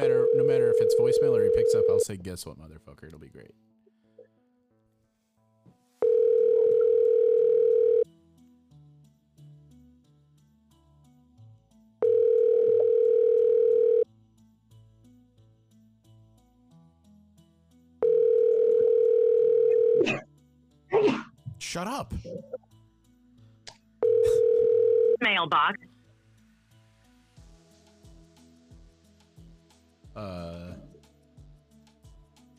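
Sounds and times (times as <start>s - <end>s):
ringback tone of an outgoing phone call: 0.0s - 2.1s, 6.0s - 8.1s, 12.0s - 14.0s, 18.0s - 20.0s, 24.0s - 25.2s
speech: 1.0s - 3.7s, 21.7s - 22.7s, 25.2s - 25.9s, 30.2s - 30.7s.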